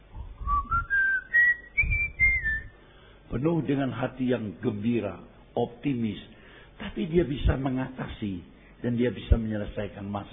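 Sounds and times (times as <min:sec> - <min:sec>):
person whistling a bright rising melody: 0:00.3 - 0:02.7
speech: 0:03.3 - 0:10.3.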